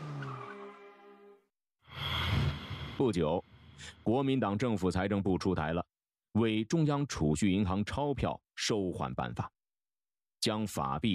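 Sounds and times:
car speeding away: 0.0s - 1.0s
speech: 3.0s - 9.6s, 10.4s - 11.1s.

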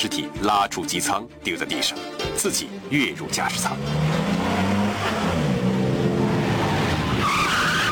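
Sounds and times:
speech: 0.0s - 4.4s
car engine roaring: 2.7s - 7.9s
car tires squealing as car skids to a halt at a runway: 3.2s - 7.9s.

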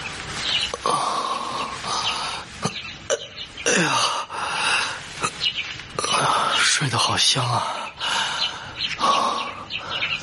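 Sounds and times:
small birds singing: 0.0s - 10.2s
steady hiss of noise: 0.0s - 10.2s
speech: 7.3s - 7.8s.

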